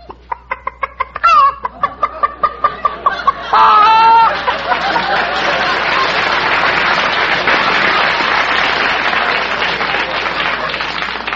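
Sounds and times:
person imitating a chicken clucking and cackling: 0.0 - 1.7
laughter: 0.0 - 11.3
audience applauding: 3.4 - 11.3.

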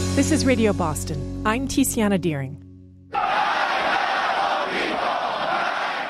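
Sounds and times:
speech: 0.2 - 2.7
crowd in city streets chanting slogans after a funeral: 3.1 - 6.0.

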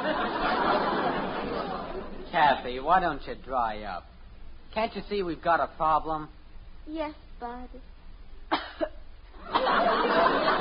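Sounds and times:
laughter: 0.0 - 2.5, 9.4 - 10.5
speech: 2.3 - 4.1, 4.7 - 7.9
forced fake coughing: 8.5 - 9.0.

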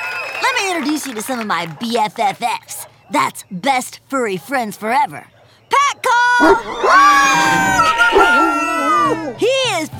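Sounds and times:
speech: 0.6 - 5.4, 6.4 - 8.4
German Pinscher dog barking: 6.4 - 6.7
German Pinscher dog howling at an animal shelter: 6.4 - 9.4.

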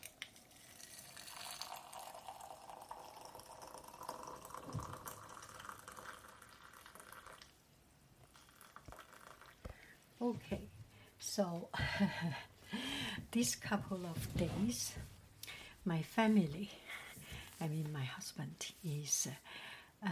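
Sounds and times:
water pouring into a container: 0.0 - 7.6, 8.2 - 9.7
speech: 10.3 - 15.1, 15.8 - 17.0, 17.6 - 20.0.

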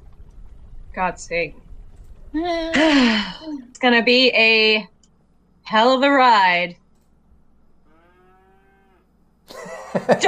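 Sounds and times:
speech: 1.0 - 1.6, 2.3 - 4.9, 5.7 - 6.8, 10.0 - 10.2
cow mooing: 7.9 - 9.1
laughter: 9.5 - 10.2.

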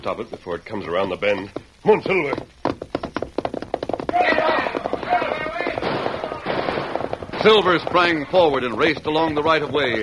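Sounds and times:
speech: 0.0 - 2.6, 7.4 - 10.0
scattered bangs: 4.1 - 9.9
rapid volley of sharp gunshots at a galloping horseman: 4.3 - 8.8.

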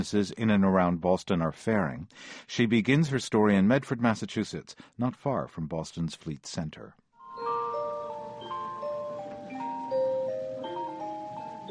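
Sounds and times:
speech: 0.0 - 7.0
several clocks chiming noon in a gift store: 7.2 - 11.6.

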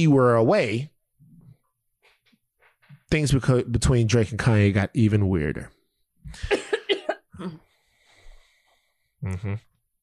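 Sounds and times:
speech: 0.0 - 0.9, 3.1 - 6.6, 7.4 - 7.6, 9.2 - 9.7
person coughing: 6.4 - 7.7
throaty voiced sound: 9.2 - 9.7.

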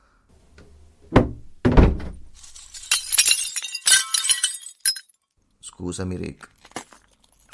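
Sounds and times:
heavy thumps against a window: 1.1 - 2.3
window glass breaking: 1.9 - 5.2
glass shards crashing and tinkling: 2.4 - 5.2
speech: 5.8 - 6.6.

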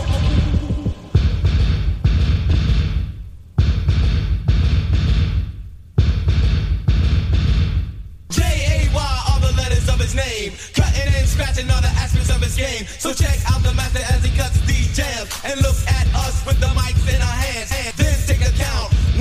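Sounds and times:
low hum: 0.0 - 7.9
fast pounding heartbeat sound effect: 0.0 - 10.2, 10.8 - 12.6, 13.2 - 15.0, 15.6 - 17.4, 18.0 - 19.1.

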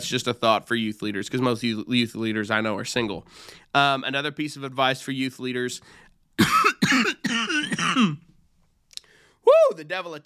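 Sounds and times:
speech: 0.0 - 8.3, 9.4 - 10.2
person coughing and throat clearing: 6.4 - 8.3.

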